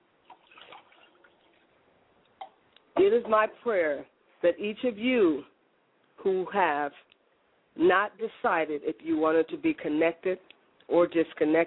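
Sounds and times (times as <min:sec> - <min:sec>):
liquid poured as a libation toward the south: 0:00.2 - 0:01.8
speech: 0:03.0 - 0:05.5, 0:06.2 - 0:07.1, 0:07.8 - 0:11.6.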